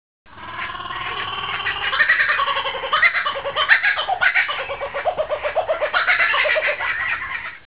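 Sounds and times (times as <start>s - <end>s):
jungle ambience: 0.3s - 7.6s.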